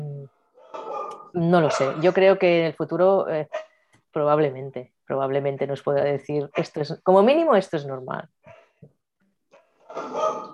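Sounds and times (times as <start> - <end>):
excited female dogs barking and yelping: 0.6 - 1.3, 9.5 - 10.5
speech: 1.3 - 3.6, 4.2 - 8.4.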